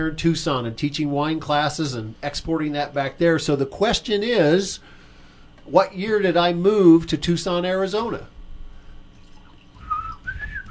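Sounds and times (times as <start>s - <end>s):
speech: 0.0s - 5.0s, 5.7s - 8.3s
low hum: 0.0s - 10.7s
person whistling a short bouncy game-show thinking tune: 9.8s - 10.7s.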